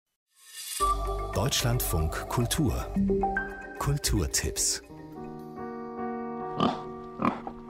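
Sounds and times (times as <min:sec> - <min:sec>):
speech: 0:01.4 - 0:04.9, 0:06.6 - 0:07.5
pig grunts and snort: 0:06.6 - 0:07.6.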